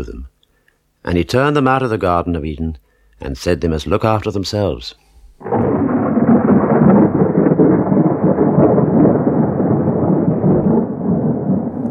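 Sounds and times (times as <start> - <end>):
speech: 1.0 - 5.5
deep rolling thunder: 5.4 - 11.8
rain hissing: 5.4 - 11.8.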